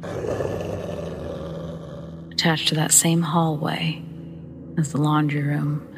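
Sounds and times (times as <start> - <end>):
low dog-like growl in a house kitchen: 0.0 - 2.4
speech: 2.4 - 4.1, 4.8 - 5.9.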